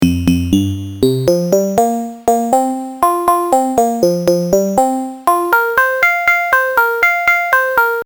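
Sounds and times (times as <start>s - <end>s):
8-bit synth pluck: 0.0s - 8.0s.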